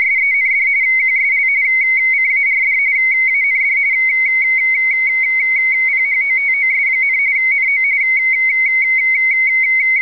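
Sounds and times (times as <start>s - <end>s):
radioteletype signal: 0.0s - 9.9s.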